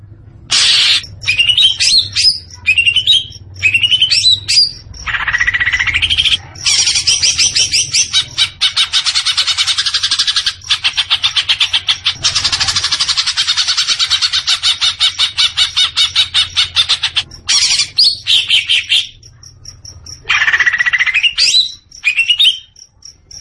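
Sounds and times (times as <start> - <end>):
leafbird song with whistled notes and buzzy chattering: 0.5 - 23.4.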